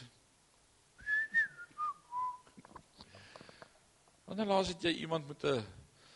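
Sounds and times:
person whistling a short cheerful melody: 1.0s - 2.5s
speech: 4.3s - 5.8s.

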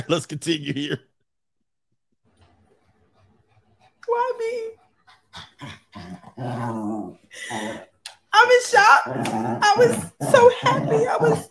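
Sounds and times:
speech: 0.0s - 1.1s, 4.0s - 4.8s, 5.4s - 11.4s
dog growling: 5.0s - 8.0s, 8.9s - 11.4s.

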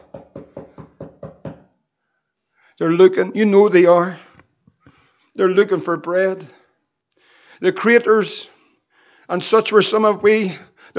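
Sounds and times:
firm knocking on a wooden door: 0.0s - 1.7s
speech: 2.8s - 4.2s, 5.4s - 6.6s, 7.6s - 8.5s, 9.3s - 10.9s.

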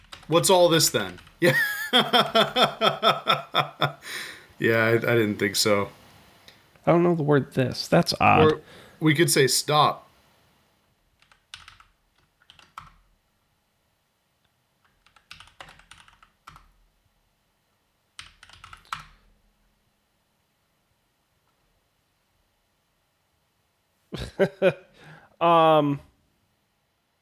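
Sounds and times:
faint hum: 0.0s - 27.2s
speech: 0.3s - 6.0s, 6.8s - 10.0s, 24.4s - 26.1s
laughter: 1.4s - 4.3s, 24.2s - 24.9s
computer clicks: 11.2s - 13.0s, 14.4s - 16.7s, 18.2s - 19.2s
computer keystrokes: 11.2s - 13.0s, 14.8s - 16.7s, 18.2s - 19.2s.

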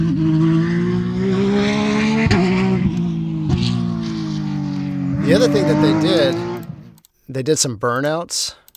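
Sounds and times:
race car roaring at high revs: 0.0s - 7.0s
speech: 5.3s - 6.5s, 7.3s - 8.6s.

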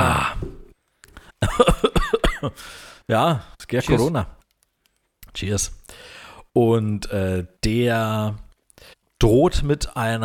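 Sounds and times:
person coughing after choking on a drink: 1.4s - 2.6s
speech: 2.4s - 4.4s, 5.4s - 10.2s.

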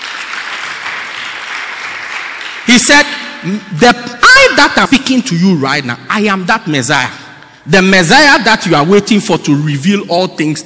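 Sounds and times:
crowd of people applauding: 0.0s - 3.2s
speech: 2.7s - 10.6s.

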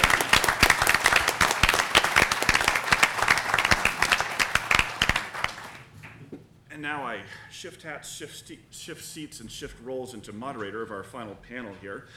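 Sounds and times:
audience applause: 0.0s - 6.3s
speech: 6.8s - 12.1s.

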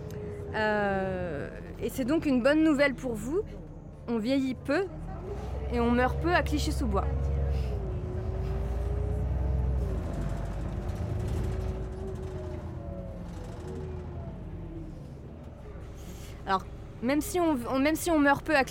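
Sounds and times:
articulated bus engine drone with rising and falling tones: 0.0s - 18.7s
speech: 0.5s - 7.6s, 16.5s - 18.7s.

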